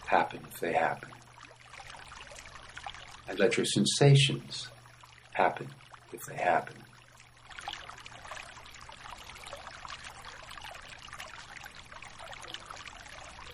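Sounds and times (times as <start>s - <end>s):
water pouring and trickling: 0.0s - 13.5s
speech: 0.1s - 1.3s, 3.3s - 4.8s, 5.4s - 6.9s.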